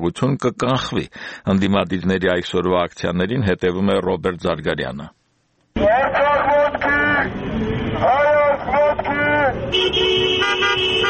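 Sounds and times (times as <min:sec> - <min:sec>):
speech: 0:00.0 - 0:05.2, 0:05.8 - 0:11.0
car horns honking in a slow protest motorcade: 0:06.8 - 0:11.0.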